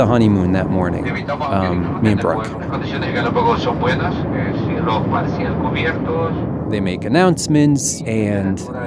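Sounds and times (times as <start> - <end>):
airplane engines roaring in the cabin: 0.0 - 8.8
speech: 0.0 - 8.8.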